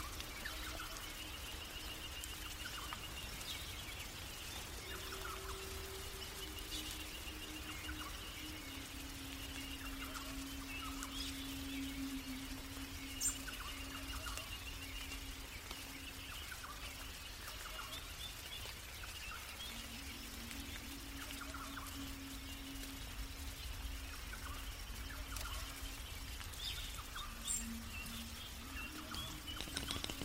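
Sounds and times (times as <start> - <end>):
birds calling in a misty forest: 0.0 - 30.2
high insect drone: 0.0 - 30.2
low sustained tones: 0.0 - 30.2
raindrops on tree leaves: 0.0 - 30.2.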